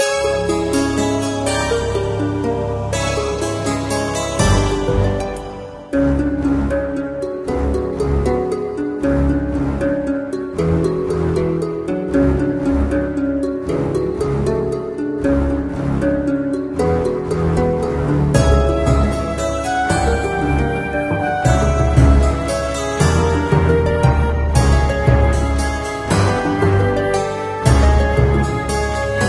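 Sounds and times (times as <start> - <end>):
background music: 0.0 - 29.2.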